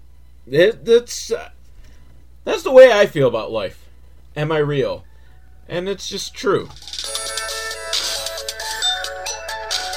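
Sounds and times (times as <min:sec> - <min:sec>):
speech: 0:00.5 - 0:01.6, 0:02.4 - 0:03.8, 0:04.4 - 0:05.1, 0:05.7 - 0:06.9
mobile phone ringtone electronic melody: 0:06.8 - 0:09.9.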